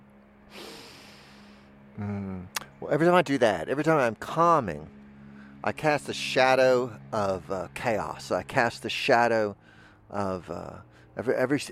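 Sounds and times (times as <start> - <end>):
steady low hum: 0.0 - 11.6
person snorting inhale through the nose, sniffing a handful of dirt: 0.5 - 1.7
speech: 2.0 - 5.0, 5.6 - 11.6.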